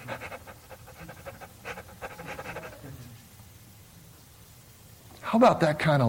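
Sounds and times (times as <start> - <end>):
person imitating a dog panting: 0.0 - 3.1
speech: 5.3 - 6.0.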